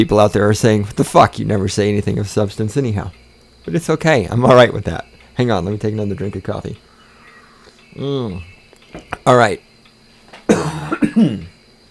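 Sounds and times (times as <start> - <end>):
speech: 0.0 - 6.9, 7.9 - 9.7, 10.5 - 11.6
man coughing away from the microphone: 10.5 - 11.6.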